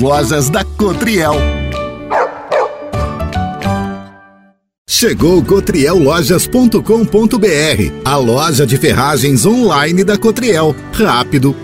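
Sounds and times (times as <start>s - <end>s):
speech: 0.0s - 1.6s, 4.9s - 11.6s
large dog barking with deep woofs: 2.1s - 2.9s.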